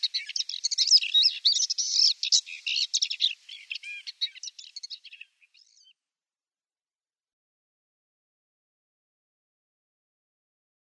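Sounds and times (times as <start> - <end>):
Paddyfield warbler song: 0.0 - 6.2.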